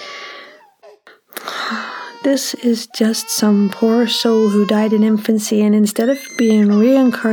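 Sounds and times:
baby gasping breaths: 0:00.0 - 0:02.3
speech: 0:01.7 - 0:07.3.

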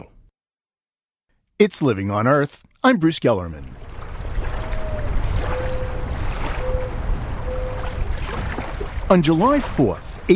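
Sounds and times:
speech: 0:01.6 - 0:03.8, 0:09.1 - 0:10.3
water washing along the shore of a pond: 0:03.7 - 0:10.3
whistle-like tones: 0:04.6 - 0:08.0.

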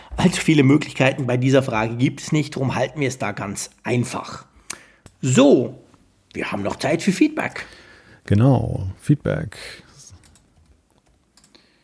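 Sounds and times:
speech: 0:00.2 - 0:04.5, 0:05.2 - 0:09.8
typing on a computer keyboard: 0:10.2 - 0:11.6.

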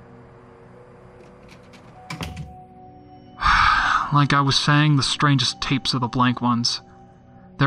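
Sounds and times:
door thudding shut: 0:01.2 - 0:02.6
speech: 0:04.1 - 0:06.9.

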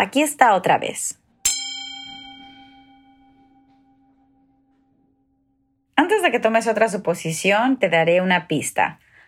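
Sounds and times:
speech: 0:00.0 - 0:01.2, 0:06.3 - 0:09.1
singing bowl being struck: 0:01.3 - 0:05.9.

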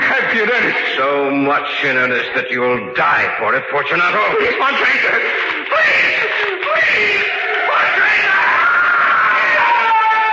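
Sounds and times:
speech: 0:00.4 - 0:07.4
laughter: 0:04.0 - 0:08.3
man screaming: 0:05.7 - 0:10.3.

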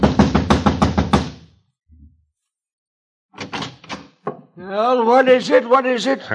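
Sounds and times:
knocking on a wooden apartment door: 0:00.0 - 0:01.4
speech: 0:04.6 - 0:06.3.

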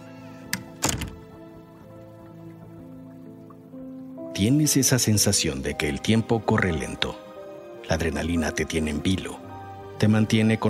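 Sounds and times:
door latch click: 0:00.5 - 0:01.2
door swinging shut with a solid heavy thunk: 0:00.5 - 0:01.3
speech: 0:04.4 - 0:07.3, 0:07.9 - 0:10.6.

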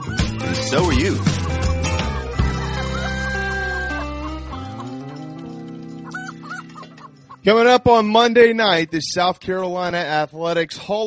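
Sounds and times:
speech: 0:00.7 - 0:01.4, 0:07.4 - 0:11.0
rooster crowing: 0:01.4 - 0:05.1, 0:06.0 - 0:07.1.

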